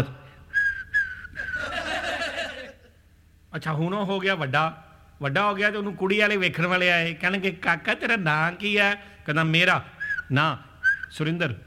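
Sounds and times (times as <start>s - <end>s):
person whistling a high clear tone: 0.5s - 1.7s, 10.0s - 11.2s
laughter: 1.4s - 3.0s
speech: 3.6s - 11.6s.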